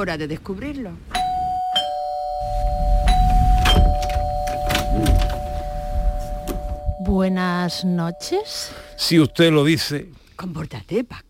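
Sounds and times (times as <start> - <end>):
speech: 0.0 - 1.1, 7.0 - 11.2
doorbell ringing with a steady electronic tone: 1.2 - 9.7.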